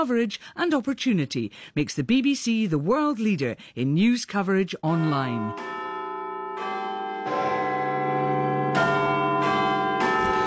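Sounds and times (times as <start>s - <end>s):
speech: 0.0s - 5.8s
clock-tower bell tolling: 5.4s - 10.4s.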